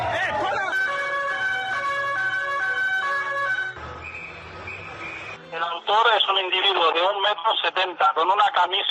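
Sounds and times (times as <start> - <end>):
people shouting: 0.0 - 0.9
ambulance siren wailing on Las Ramblas in Barcelona: 0.0 - 5.4
speech: 6.3 - 8.8.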